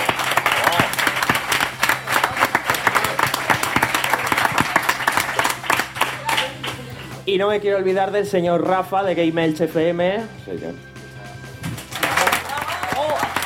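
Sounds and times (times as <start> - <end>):
audience applause: 0.0 - 6.8, 11.8 - 13.4
speech: 7.3 - 10.9.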